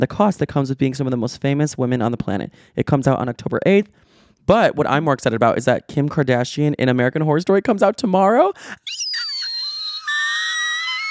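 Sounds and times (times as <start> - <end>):
speech: 0.0 - 9.2
person giving a high whistle-tone scream: 8.8 - 11.0.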